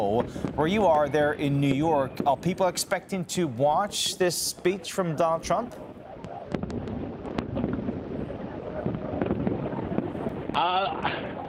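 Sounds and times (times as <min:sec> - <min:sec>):
speech: 0:00.0 - 0:05.9
fireworks popping and banging: 0:00.0 - 0:11.4
whistling firework rocket streaking up: 0:04.7 - 0:11.4.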